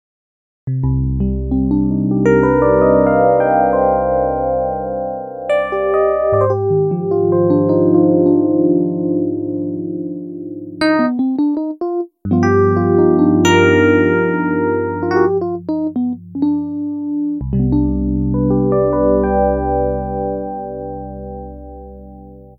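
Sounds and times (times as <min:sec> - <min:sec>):
basic FM synthesized piano: 0:00.7 - 0:22.5.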